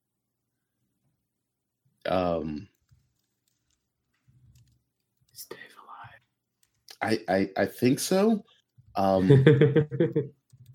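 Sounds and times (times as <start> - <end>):
speech: 2.1 - 2.7, 7.0 - 10.4
computer keyboard typing: 2.7 - 5.4, 9.9 - 10.7
laughter: 9.2 - 10.3.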